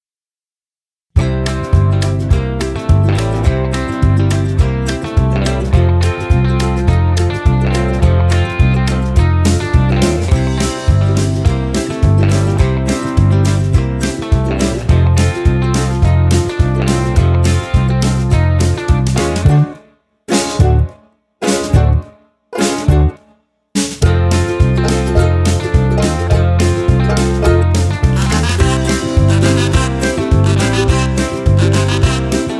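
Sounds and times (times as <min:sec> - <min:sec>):
ukulele: 0:01.2 - 0:23.4, 0:24.0 - 0:32.5
kazoo: 0:28.1 - 0:32.5
whistle: 0:28.2 - 0:32.5.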